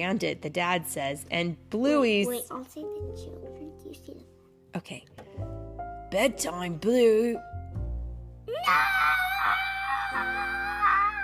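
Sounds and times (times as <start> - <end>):
speech: 0.0 - 7.5, 8.5 - 9.2
child's long drawn-out wailing scream of no: 8.5 - 11.2.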